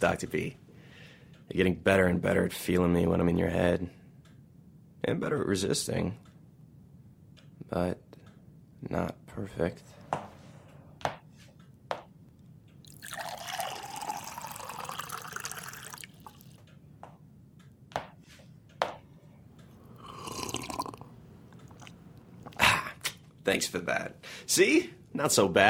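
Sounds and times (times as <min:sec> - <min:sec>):
speech: 0:00.0 - 0:00.6, 0:01.5 - 0:04.0, 0:05.0 - 0:06.3, 0:07.7 - 0:08.0, 0:08.8 - 0:10.3, 0:23.5 - 0:25.6
water pouring into a glass: 0:12.8 - 0:16.6, 0:20.0 - 0:21.0
glass set down with sharp clinks: 0:12.9 - 0:16.4
splashy drinking from a glass of water: 0:12.9 - 0:16.5.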